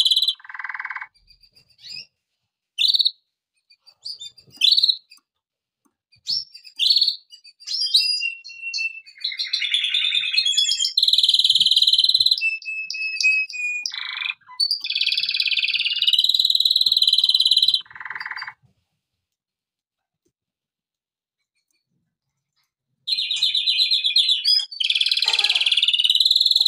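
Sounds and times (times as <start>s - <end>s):
canary singing: 0.0s - 2.2s, 2.8s - 5.3s, 6.1s - 18.6s, 23.1s - 26.6s.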